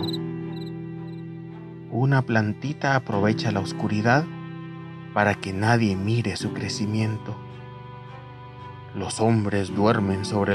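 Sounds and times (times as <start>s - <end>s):
cricket chirping: 0.0s - 1.2s
speech: 1.9s - 4.4s, 5.2s - 7.4s, 9.0s - 10.5s.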